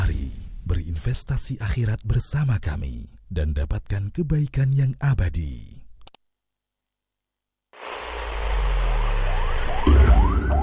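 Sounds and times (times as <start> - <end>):
speech: 1.0 - 5.8
ambulance siren wailing: 8.8 - 10.6.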